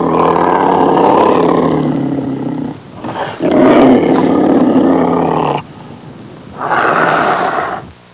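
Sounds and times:
tigress growling: 0.0s - 5.7s, 6.6s - 7.9s.

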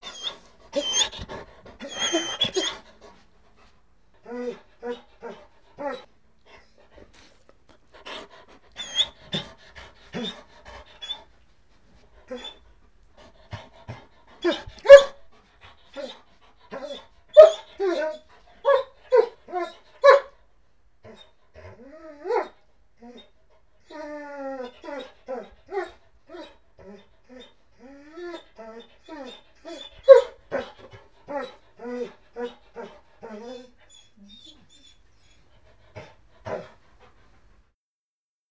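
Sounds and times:
dog whining and begging: 0.0s - 3.0s, 4.2s - 6.1s, 8.1s - 10.4s, 11.0s - 11.2s, 12.3s - 12.6s, 14.4s - 15.1s, 16.0s - 20.2s, 23.9s - 35.5s.

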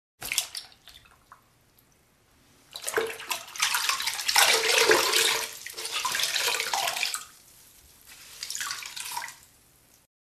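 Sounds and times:
water pouring into a tub: 2.7s - 9.6s.

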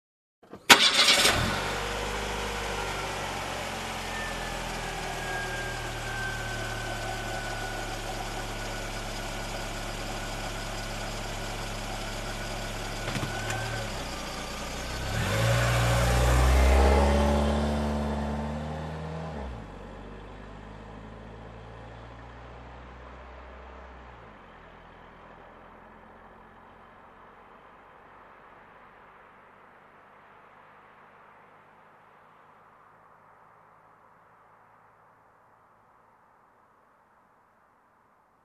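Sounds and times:
engine starting and driving away: 0.4s - 27.4s.

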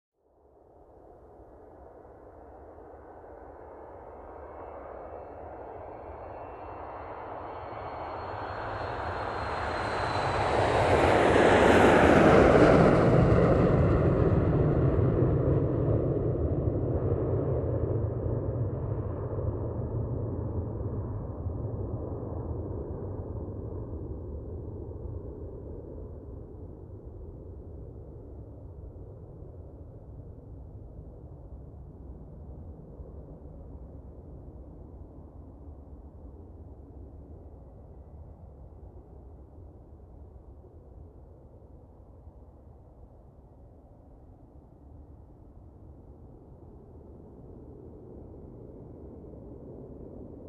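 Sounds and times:
distant airliner lifting off with whirring sound: 1.6s - 50.4s.

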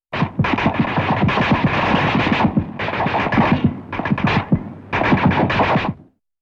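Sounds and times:
machine gun firing: 0.1s - 6.1s.

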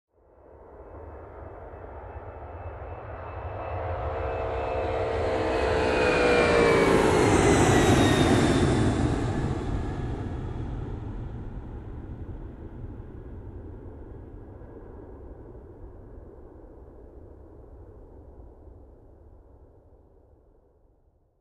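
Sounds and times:
aircraft lifting off up close: 3.2s - 15.1s.

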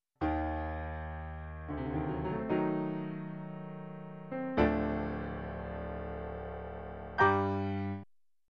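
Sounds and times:
dark elegant piano line: 0.2s - 8.0s.

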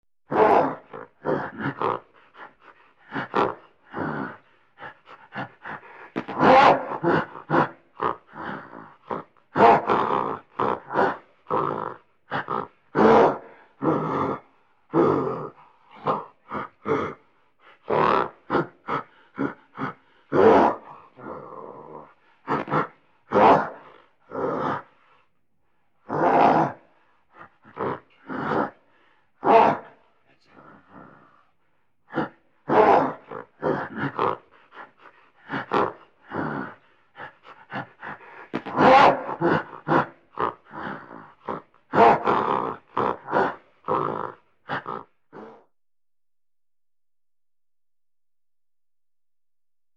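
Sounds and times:
miscellaneous grunting: 0.3s - 25.2s, 26.0s - 45.7s.

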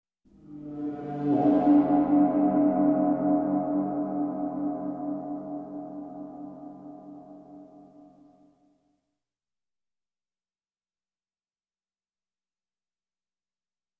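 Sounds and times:
suspense gong with echo: 0.4s - 8.3s.

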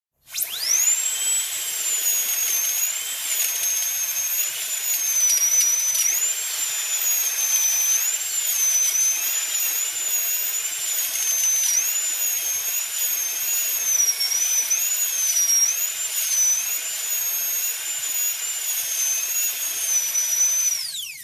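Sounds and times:
dentist's drill: 0.2s - 21.2s.

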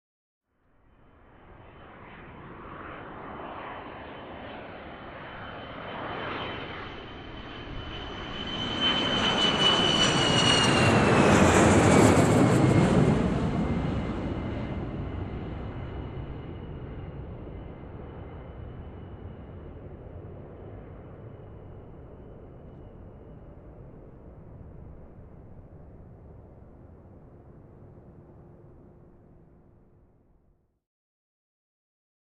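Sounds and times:
airliner on runway taking off: 1.0s - 29.2s.

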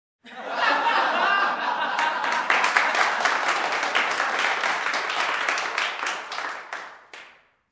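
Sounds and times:
audience in a close room laughing: 0.2s - 4.0s
audience in a close room clapping: 1.8s - 7.7s.

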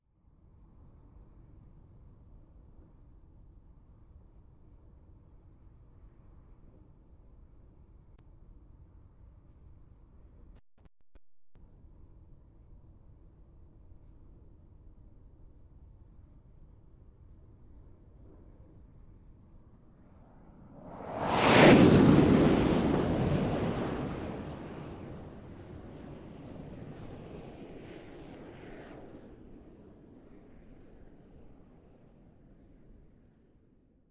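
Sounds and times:
jet engine whirring: 19.9s - 29.2s.

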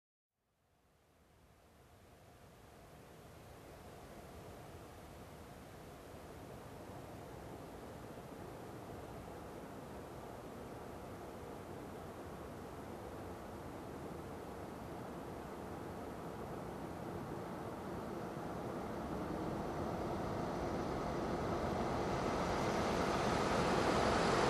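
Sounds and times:
truck passing slowly: 14.4s - 24.4s.

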